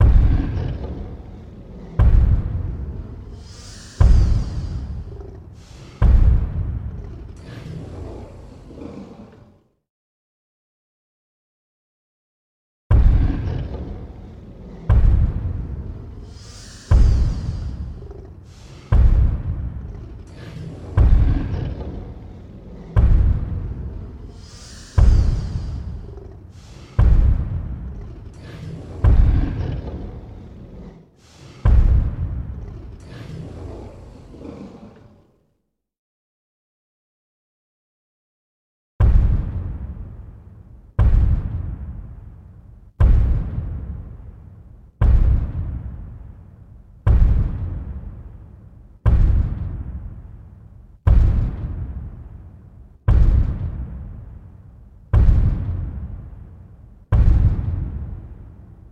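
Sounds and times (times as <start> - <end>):
dinosaur footstep: 0.0 - 1.2, 2.0 - 3.4, 4.0 - 5.3, 6.0 - 7.3, 12.9 - 16.3, 16.9 - 24.4, 25.0 - 28.4, 29.0 - 30.2, 31.7 - 32.9, 41.0 - 42.1, 43.0 - 44.0, 45.0 - 46.2, 47.1 - 48.2, 49.1 - 50.0, 51.1 - 52.3, 53.1 - 54.3, 55.2 - 56.4, 57.1 - 58.4.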